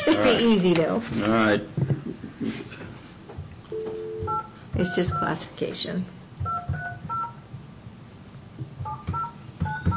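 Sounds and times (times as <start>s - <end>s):
speech: 0.2s - 1.9s, 4.8s - 6.2s
phone keypad tones beeping out a dialed number: 3.7s - 5.4s, 6.4s - 7.4s, 8.8s - 9.9s.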